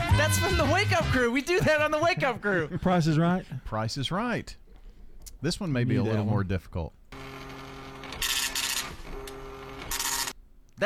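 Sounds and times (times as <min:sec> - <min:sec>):
speech: 0:00.3 - 0:04.6, 0:05.4 - 0:07.0
dot matrix printer printing: 0:07.1 - 0:10.4.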